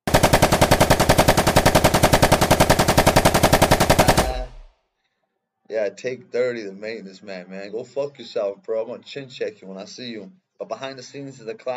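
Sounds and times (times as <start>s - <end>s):
automatic gunfire in a video game: 0.0s - 4.7s
speech: 5.7s - 11.7s.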